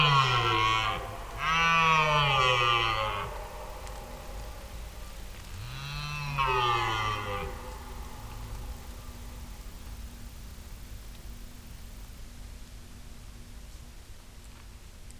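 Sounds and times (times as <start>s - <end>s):
wild male red deer bellowing during the mating season: 0.0s - 11.8s.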